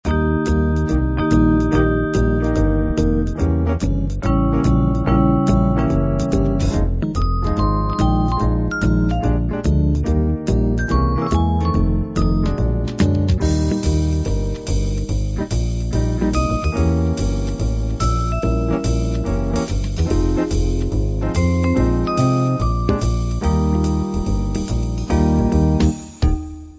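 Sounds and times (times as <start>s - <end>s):
soft jazz: 0.1s - 26.2s.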